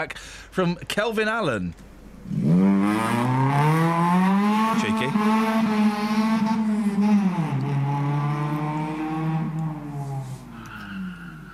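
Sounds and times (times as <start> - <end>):
speech: 0.0 - 3.5, 4.8 - 6.2
motorbike engine racing: 2.2 - 10.6.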